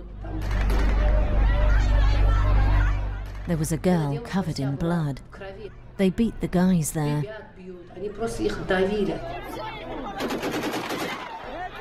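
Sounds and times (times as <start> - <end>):
crowd shouting at an anti-war protest: 0.5 - 3.5, 9.0 - 11.7
people yelling and talking at an anti-war protest: 0.6 - 3.4, 7.8 - 11.7
speech: 3.5 - 9.6
gunshots fired into the air at an anti-war protest: 10.2 - 11.4.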